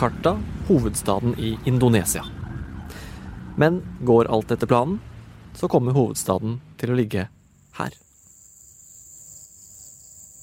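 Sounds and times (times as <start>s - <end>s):
speech: 0.0s - 2.4s, 3.6s - 8.0s
busy city street traffic engine rumble and road noise: 0.0s - 9.0s
siren wailing on a busy city street: 1.5s - 4.0s.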